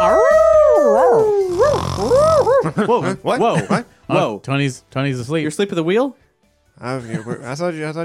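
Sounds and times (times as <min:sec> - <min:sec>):
person imitating a confused dog howling: 0:00.0 - 0:02.6
speech: 0:02.8 - 0:06.2, 0:06.8 - 0:08.0.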